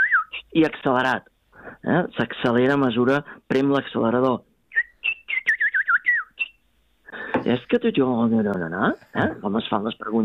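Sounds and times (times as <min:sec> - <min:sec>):
speech: 0:00.5 - 0:04.5, 0:07.4 - 0:10.2
black woodpecker call: 0:04.8 - 0:06.6.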